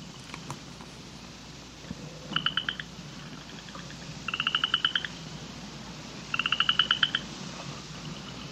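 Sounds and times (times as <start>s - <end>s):
faint hiss: 0.0s - 8.5s
upland chorus frog chorus trilling: 2.2s - 5.2s, 6.3s - 7.3s, 8.1s - 8.5s.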